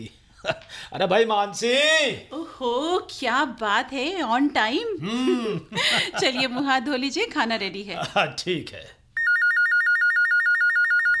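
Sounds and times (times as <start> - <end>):
speech: 0.0 - 9.0
laughter: 5.0 - 6.7
telephone ringing with trilling bell: 9.2 - 11.1.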